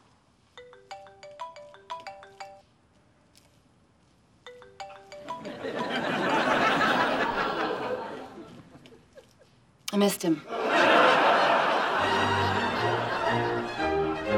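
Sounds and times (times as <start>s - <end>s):
phone playing bright melodic electronic ringtone: 0.6s - 2.7s, 4.5s - 6.3s
laughter: 5.4s - 9.6s, 10.5s - 14.2s
speech: 10.0s - 10.6s.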